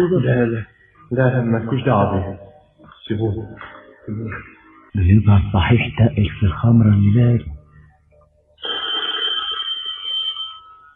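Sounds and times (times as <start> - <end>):
speech: 0.0 - 2.5, 3.1 - 7.5
telephone bell ringing with a metallic trill: 8.6 - 10.9.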